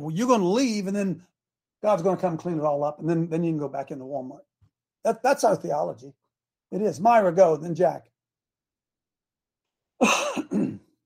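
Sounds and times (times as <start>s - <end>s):
speech: 0.0s - 8.1s, 10.0s - 10.7s
person coughing: 10.0s - 11.0s.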